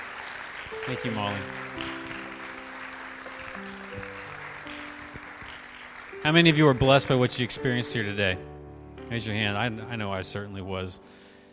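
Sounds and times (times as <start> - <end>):
audience applauding a speaker: 0.0 - 7.7
speech: 0.7 - 2.1, 6.2 - 11.2
soft sustained musical notes: 0.7 - 11.2.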